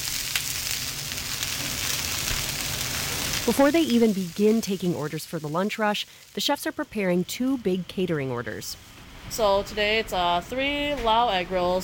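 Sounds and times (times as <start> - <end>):
dumplings frying in hot oil: 0.0 - 8.9
low rumble of restaurant kitchen noise: 0.0 - 11.8
speech: 3.4 - 11.8.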